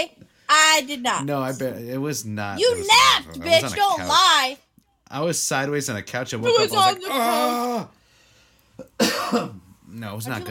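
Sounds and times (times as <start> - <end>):
speech: 0.0 - 8.0, 9.0 - 10.5
drawn-out strained vocal sound: 2.6 - 4.4, 6.4 - 7.9
short sharp coughs turned away from microphone: 8.8 - 9.6.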